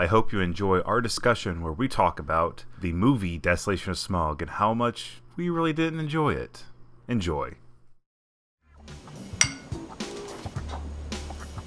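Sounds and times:
speech: 0:00.0 - 0:07.6
sharp clink of glass: 0:09.4 - 0:09.8.

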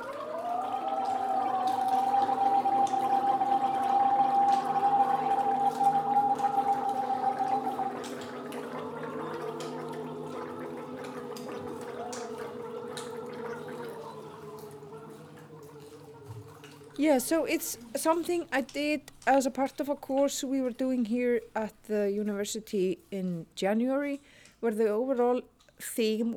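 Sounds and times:
vocal soloists gargling and making sounds with water in performed piece: 0:00.0 - 0:18.1
vocalist holding a steady pitched note: 0:01.2 - 0:16.3
speech: 0:17.0 - 0:26.3.

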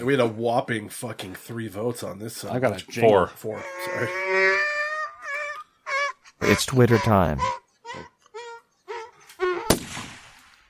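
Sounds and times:
speech: 0:00.0 - 0:04.4, 0:06.4 - 0:08.1
whiny tonal cries: 0:03.5 - 0:09.8
gunshot with rumbling echo: 0:09.7 - 0:10.5.

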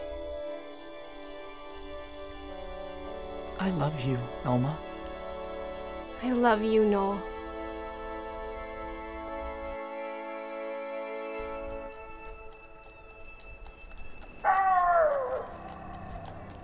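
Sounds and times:
coyote howling at night: 0:00.0 - 0:00.4, 0:01.8 - 0:09.8, 0:13.3 - 0:16.6
speech: 0:03.6 - 0:04.9, 0:06.2 - 0:07.3.

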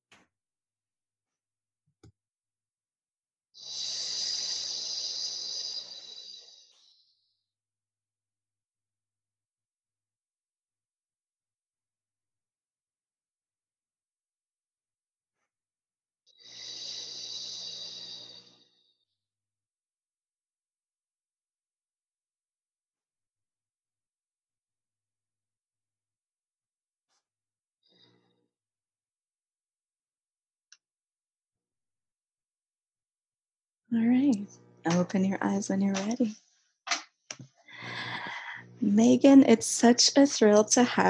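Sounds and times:
long smooth inhale through the nose: 0:03.6 - 0:06.3, 0:37.7 - 0:38.7
slow exhale through pursed lips: 0:03.6 - 0:06.4, 0:37.7 - 0:38.8
speech: 0:33.9 - 0:36.4, 0:38.8 - 0:41.0.

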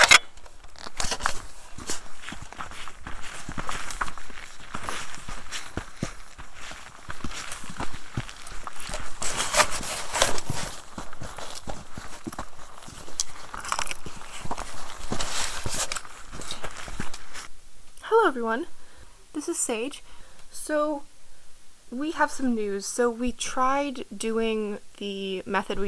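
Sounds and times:
footsteps of people walking on a hiking trail: 0:00.0 - 0:17.6
speech: 0:18.4 - 0:18.8, 0:19.4 - 0:21.1, 0:21.9 - 0:25.8.

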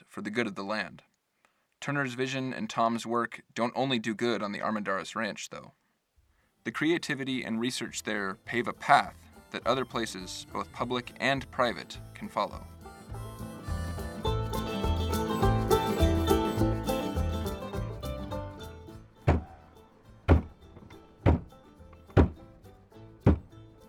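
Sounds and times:
speech: 0:00.2 - 0:01.1, 0:01.8 - 0:05.8, 0:06.6 - 0:12.7
truck driving past a herd of American bison on a ranch: 0:12.5 - 0:22.6
hand thudding on the side of a truck: 0:19.3 - 0:19.5, 0:21.3 - 0:21.6, 0:22.2 - 0:22.4, 0:23.3 - 0:23.5.

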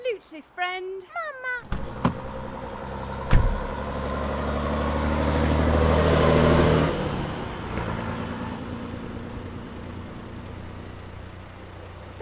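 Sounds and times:
speech: 0:00.3 - 0:01.9
sharp thumps: 0:01.6 - 0:02.3, 0:03.3 - 0:03.7
truck engine revving as it drives off: 0:01.7 - 0:12.0.

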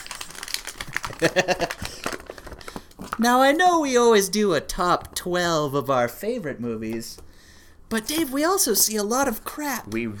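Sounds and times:
paper being crumpled: 0:00.0 - 0:03.2
speech: 0:01.2 - 0:02.1, 0:03.2 - 0:07.2, 0:07.9 - 0:10.1.

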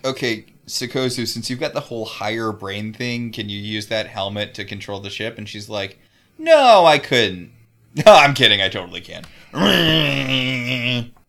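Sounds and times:
speech: 0:00.0 - 0:11.2
person laughing: 0:09.6 - 0:11.2
voice imitating the grinding noise of psychic interfacing: 0:09.6 - 0:11.2.

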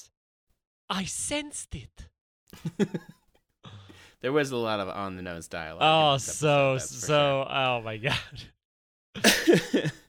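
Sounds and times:
speech: 0:00.9 - 0:03.2, 0:04.2 - 0:08.6, 0:09.2 - 0:10.0
light cough: 0:09.2 - 0:10.0.

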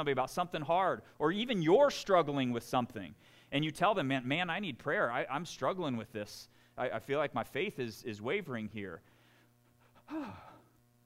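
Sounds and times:
speech: 0:00.0 - 0:09.1, 0:10.1 - 0:10.5
person gasping in mock shock: 0:09.1 - 0:10.8.

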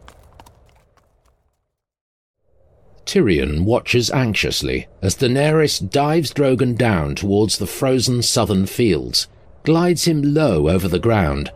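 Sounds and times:
horse hooves clopping as a rider spurs the horse to a trot: 0:00.0 - 0:01.8
speech: 0:03.1 - 0:11.5.

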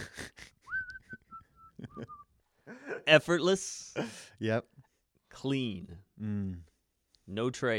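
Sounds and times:
person whistling a short simple melody: 0:00.6 - 0:02.3
speech: 0:03.1 - 0:04.7, 0:05.4 - 0:06.7, 0:07.3 - 0:07.7.

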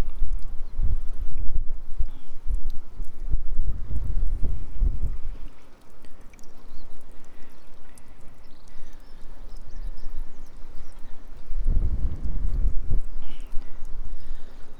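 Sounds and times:
strong wind buffeting the microphone by a harbour: 0:00.0 - 0:05.6, 0:09.5 - 0:14.7.

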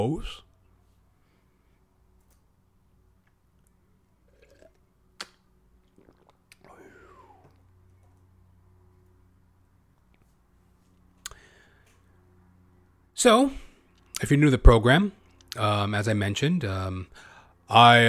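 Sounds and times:
speech: 0:00.0 - 0:00.4, 0:13.2 - 0:13.6, 0:14.2 - 0:18.0
low steady hum: 0:00.0 - 0:18.0
sipping water: 0:03.6 - 0:07.9.

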